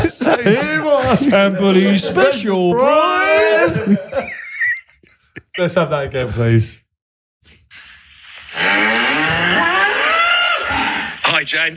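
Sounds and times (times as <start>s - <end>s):
laughter: 0.0s - 5.5s
speech: 0.4s - 4.4s, 5.6s - 6.8s, 11.4s - 11.7s
cows mooing in a cattle shed: 8.8s - 11.0s.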